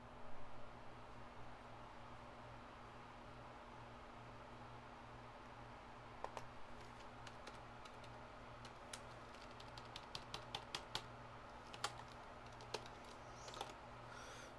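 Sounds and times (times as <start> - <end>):
faint steady low hum: 0.0 - 14.5
typing on a computer keyboard: 6.2 - 13.8.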